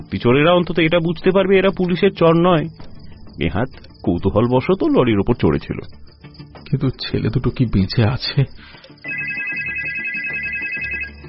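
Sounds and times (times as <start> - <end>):
speech: 0.0 - 6.1, 6.7 - 9.2
telephone ringing in the next room: 9.0 - 11.2.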